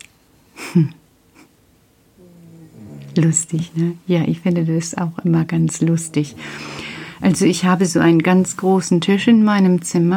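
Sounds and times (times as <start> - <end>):
speech: 0.7 - 1.0, 3.2 - 10.1
resting pet snoring: 2.2 - 8.6.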